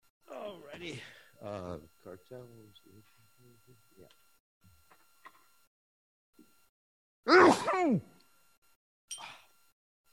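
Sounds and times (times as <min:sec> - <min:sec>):
speech: 0:00.8 - 0:04.3, 0:07.3 - 0:08.2
person sneezing loudly: 0:07.3 - 0:08.0.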